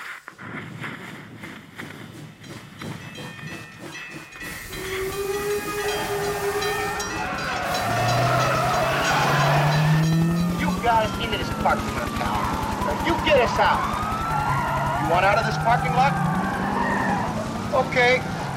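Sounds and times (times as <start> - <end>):
steam locomotive chuffing and hissing: 1.5 - 18.4
shrill steam whistle: 4.4 - 10.5
speech: 15.1 - 16.3, 17.8 - 18.3.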